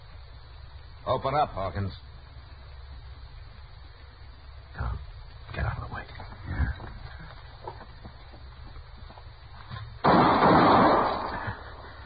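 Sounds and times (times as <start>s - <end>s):
low noise: 0.0s - 12.0s
speech: 1.1s - 2.2s
loud gunshot fired through a door: 10.0s - 11.8s.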